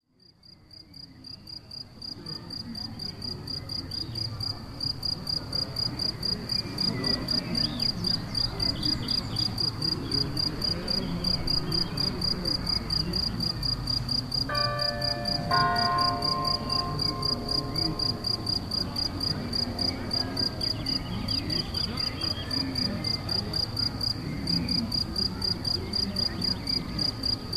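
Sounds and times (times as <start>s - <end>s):
crickets chirping in Galicia: 0.4s - 27.5s.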